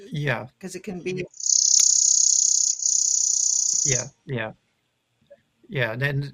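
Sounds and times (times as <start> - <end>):
speech: 0.1 - 1.4, 3.8 - 4.6, 5.7 - 6.3
chipping sparrow dry insect-like trill: 1.3 - 4.1.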